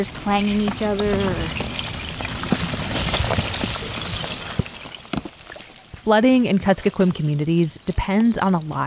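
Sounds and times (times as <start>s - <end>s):
speech: 0.0s - 1.7s, 6.1s - 8.8s
river ice chunks clinking and knocking together: 0.0s - 6.1s
steady rush of river water: 0.0s - 8.8s.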